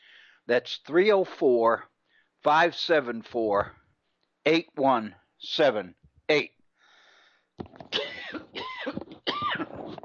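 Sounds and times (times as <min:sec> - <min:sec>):
speech: 0:00.5 - 0:03.8, 0:04.4 - 0:06.6
person coughing: 0:07.8 - 0:10.0.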